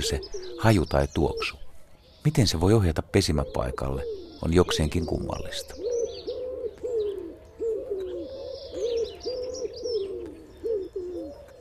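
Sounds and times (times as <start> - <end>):
speech: 0.0 - 1.6, 2.2 - 5.9
common wood pigeon cooing: 0.0 - 11.5
other birds chirping: 0.0 - 11.5.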